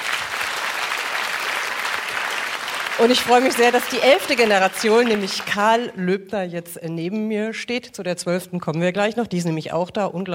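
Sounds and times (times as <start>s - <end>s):
audience applause at a public celebration honouring a toy shop: 0.0s - 5.8s
speech: 3.0s - 10.3s.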